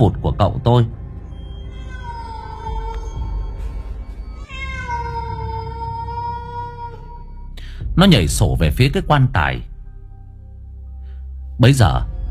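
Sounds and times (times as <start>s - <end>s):
speech: 0.0s - 1.0s, 8.0s - 9.7s, 11.6s - 12.1s
cat hissing and screeching: 1.3s - 7.5s.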